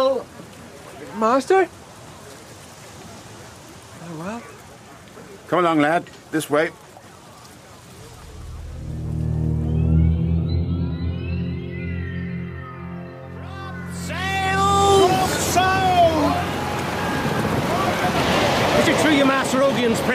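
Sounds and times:
sea waves aboard a ship: 0.0 - 11.0, 11.9 - 20.1
wind aboard a ship: 0.0 - 20.1
speech: 1.2 - 1.8, 4.1 - 4.6, 5.5 - 6.8
low steady droning hum aboard a ship: 8.1 - 15.6.

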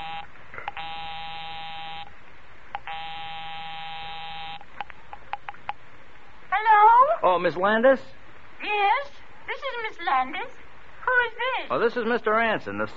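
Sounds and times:
house phone dialing clicks and beeps: 0.0 - 2.1, 2.7 - 5.8
house phone giving long harsh buzzing rings: 0.0 - 2.1, 2.8 - 5.5
speech: 7.4 - 12.9.

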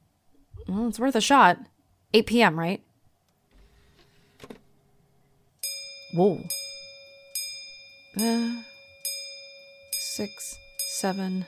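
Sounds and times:
speech: 0.7 - 2.9, 6.1 - 6.6, 8.2 - 8.7, 10.2 - 11.4
clock chiming with ringing metallic strikes: 5.6 - 11.4.

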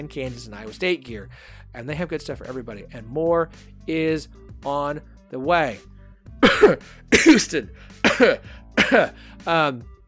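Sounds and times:
speech: 0.0 - 9.9
raspy coughs in a coughing fit: 6.4 - 9.2.

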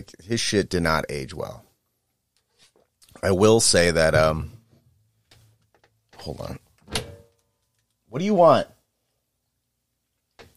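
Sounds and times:
speech: 0.0 - 1.7, 3.2 - 4.6, 6.2 - 7.0, 8.1 - 8.8
door latch clunk as a door is opened for a dog: 6.9 - 7.3.

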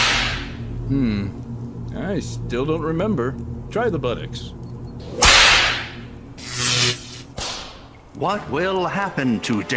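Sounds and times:
whip crack: 0.0 - 0.4, 5.2 - 5.9, 7.3 - 7.8
speech: 0.9 - 5.4, 8.2 - 9.7.

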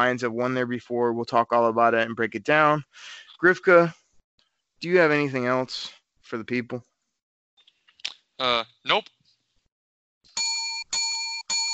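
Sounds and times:
speech: 0.0 - 4.0, 4.8 - 6.9, 8.4 - 9.2
electronic doorbell-style bell ringing: 10.4 - 11.7.

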